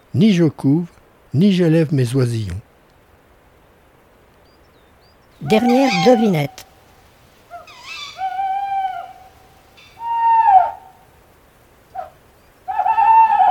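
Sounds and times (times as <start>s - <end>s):
speech: 0.1s - 2.7s, 5.4s - 6.7s
Tawny Owl hooting: 5.4s - 13.4s.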